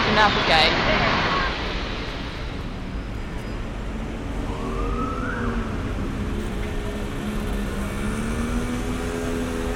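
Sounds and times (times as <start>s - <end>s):
busy street traffic rumbling: 0.0s - 9.7s
speech: 0.2s - 1.2s
siren wailing: 4.2s - 6.4s.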